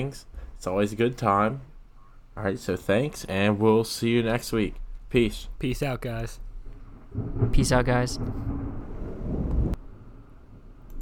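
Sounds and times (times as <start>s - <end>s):
speech: 0.0s - 1.7s, 2.4s - 6.4s, 7.1s - 8.6s
thunder rumbling: 0.3s - 1.0s, 4.2s - 11.0s.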